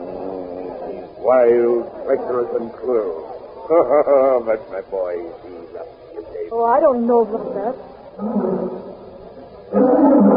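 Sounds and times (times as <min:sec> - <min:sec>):
lion roaring: 0:00.0 - 0:01.8, 0:08.2 - 0:08.9, 0:09.7 - 0:10.3
laughter: 0:00.0 - 0:06.4
speech: 0:01.3 - 0:08.6.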